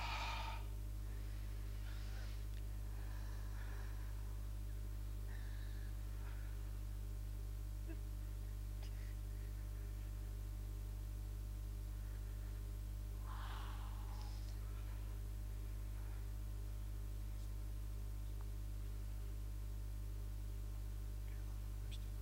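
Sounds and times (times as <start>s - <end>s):
people breathing in and out deeply: 0.0s - 4.6s, 5.2s - 6.7s, 11.9s - 15.2s
constant low electrical hum: 0.0s - 22.2s.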